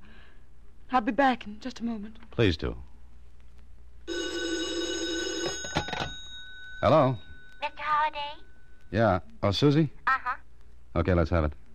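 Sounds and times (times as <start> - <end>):
speech: 0.9 - 2.9, 6.8 - 11.6
telephone bell ringing: 4.1 - 8.8.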